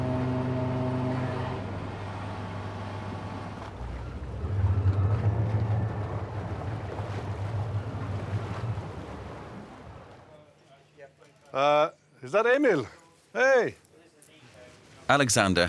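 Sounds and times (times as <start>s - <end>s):
two boat engines droning: 0.0s - 10.6s
rushing water: 2.5s - 10.3s
speech: 11.6s - 13.8s, 15.1s - 15.6s.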